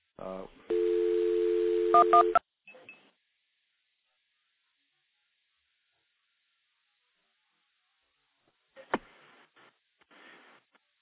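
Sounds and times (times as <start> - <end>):
telephone dial tone routed through stacked phone trunks: 0.7 - 2.4.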